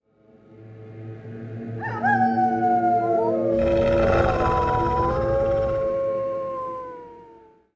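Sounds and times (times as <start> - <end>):
wolves in a forest: 1.8 - 7.5.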